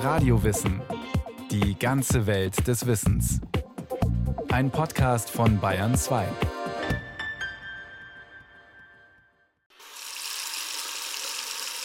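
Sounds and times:
speech: 0.0 - 3.6, 4.4 - 6.6
water gushing from a tap in a hissing stream: 9.7 - 11.8.

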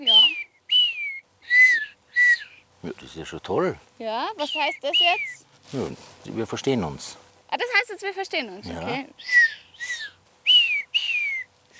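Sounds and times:
person whistling an imitated animal whistle call: 0.0 - 2.6, 4.4 - 5.4, 9.2 - 11.7
speech: 2.8 - 9.4.

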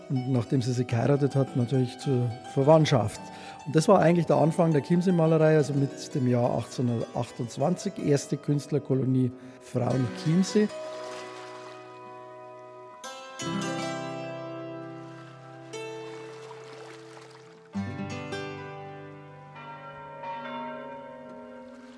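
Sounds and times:
speech: 0.1 - 10.9
church bells ringing across the lake: 9.8 - 11.0, 18.0 - 21.9.

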